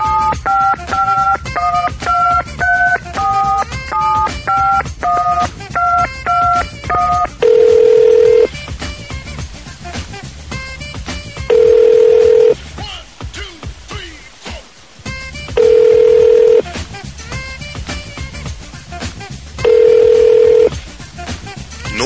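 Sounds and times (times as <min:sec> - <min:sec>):
telephone ringback tones going unanswered: 0:00.0 - 0:08.5, 0:11.5 - 0:12.6, 0:15.6 - 0:16.6, 0:19.6 - 0:20.7
touch-tone telephone keypad dialing beeps: 0:00.0 - 0:08.5, 0:11.5 - 0:12.6, 0:15.6 - 0:16.6, 0:19.7 - 0:20.7.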